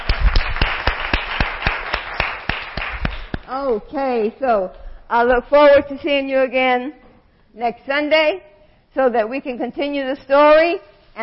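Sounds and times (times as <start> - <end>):
group hand clapping in praise to God after a Sunday lesson: 0.0 - 3.5
speech: 3.6 - 7.0, 7.6 - 11.2.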